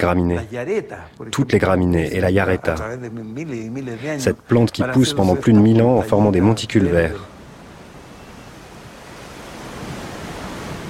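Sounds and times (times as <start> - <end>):
speech: 0.0 - 7.3
strong mountain wind blowing: 7.3 - 10.8.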